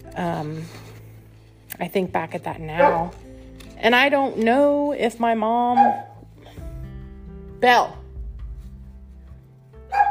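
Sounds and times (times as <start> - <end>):
speech: 0.2 - 0.9, 1.8 - 6.1, 7.6 - 8.0
single sharp dog bark: 2.8 - 3.2, 5.8 - 6.2.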